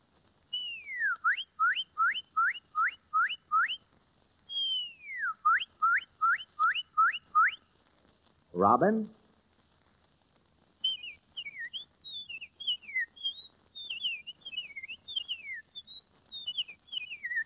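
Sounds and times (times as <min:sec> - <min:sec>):
woman whistling an imitation of a cardinal's song: 0:00.5 - 0:03.8, 0:04.5 - 0:07.6, 0:10.8 - 0:17.4
speech: 0:08.6 - 0:09.2.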